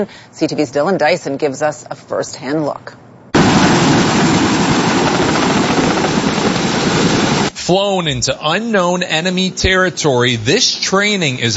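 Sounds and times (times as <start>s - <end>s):
speech: 0.0s - 3.0s, 7.7s - 11.5s
Royal Canadian Air Force Chinook helicopter engines and rotors roaring: 3.4s - 7.5s.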